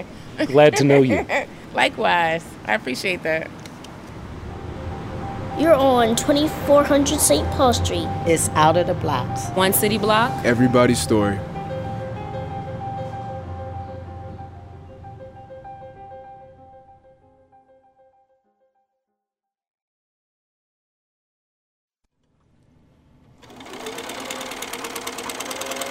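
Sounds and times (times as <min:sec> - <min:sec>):
speech: 0:00.0 - 0:03.6, 0:05.6 - 0:11.5
laughter: 0:00.4 - 0:01.5
industrial sewing machine stitching with humming motor whine: 0:23.4 - 0:25.8.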